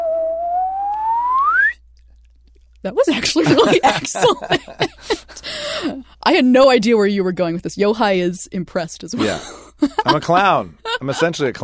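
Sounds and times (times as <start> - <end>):
slide whistle tone gliding upward in pitch: 0.0 - 1.8
speech: 2.8 - 5.2, 5.8 - 11.6
laughter: 3.1 - 6.0, 9.2 - 11.6.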